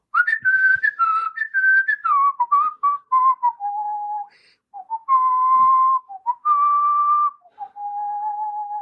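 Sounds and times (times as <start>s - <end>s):
person whistling a melody: 0.1s - 8.8s.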